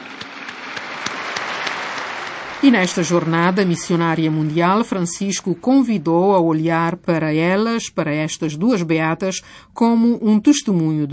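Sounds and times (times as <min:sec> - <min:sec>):
large crowd clapping at a beatification celebration: 0:00.0 - 0:05.4
speech: 0:02.6 - 0:11.1.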